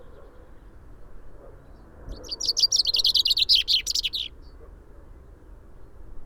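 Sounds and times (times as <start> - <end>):
common chaffinch Fringilla coelebs singing: 2.1 - 4.3.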